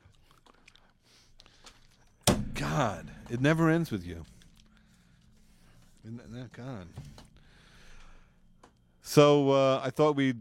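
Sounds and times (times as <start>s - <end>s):
wet chewing on a wad of gum: 0.0s - 2.2s, 4.2s - 6.1s
speech: 2.7s - 4.4s, 6.0s - 7.2s, 9.2s - 10.3s.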